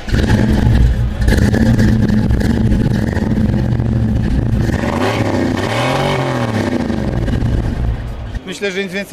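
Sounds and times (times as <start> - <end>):
classic American V8 car engine idling and revving at a fair in Poznań: 0.0 - 8.4
speech: 8.6 - 9.1.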